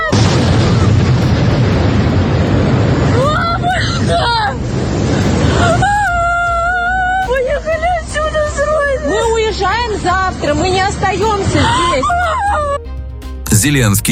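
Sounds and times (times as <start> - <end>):
drone strike explosion hitting a residential building: 0.1 - 6.0
house burning with roaring rumbling noise: 0.1 - 12.7
speech: 13.6 - 14.1.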